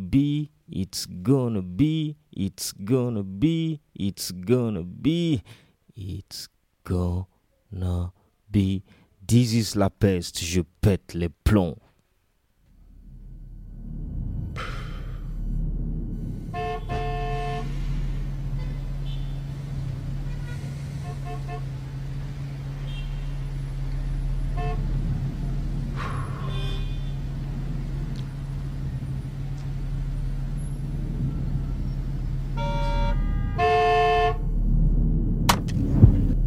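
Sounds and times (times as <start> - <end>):
speech: 0.1 - 11.8
idling engines and traffic on a congested street: 12.6 - 36.4
car horns honking in a traffic jam: 16.2 - 34.6.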